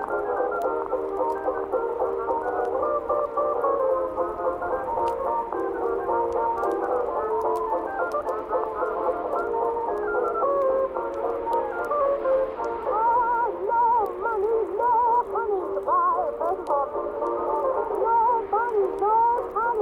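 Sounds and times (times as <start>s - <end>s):
faint ticks and clicks: 0.0s - 19.8s
oldies music playing softly from another room: 0.0s - 19.8s.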